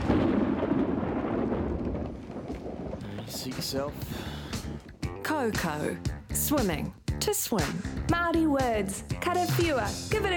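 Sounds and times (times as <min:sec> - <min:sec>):
thunder rumbling during summer rain: 0:00.0 - 0:06.4
speech: 0:03.4 - 0:04.4, 0:05.3 - 0:10.3.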